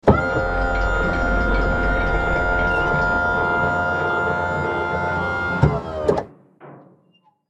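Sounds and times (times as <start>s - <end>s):
artillery tank turret turning with mechanical noise: 0.0s - 6.3s.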